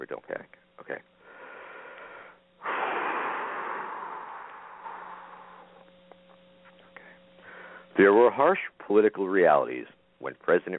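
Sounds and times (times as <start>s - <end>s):
speech: 0.0s - 1.1s, 8.0s - 10.7s
faint steady hum: 0.0s - 10.7s
deep breath: 1.2s - 5.9s, 7.0s - 7.9s.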